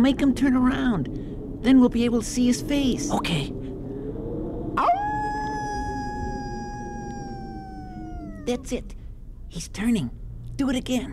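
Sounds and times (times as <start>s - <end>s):
speech: 0.0s - 3.6s, 8.5s - 11.1s
low rumble: 0.0s - 11.1s
person imitating a wolf howling: 4.8s - 8.8s.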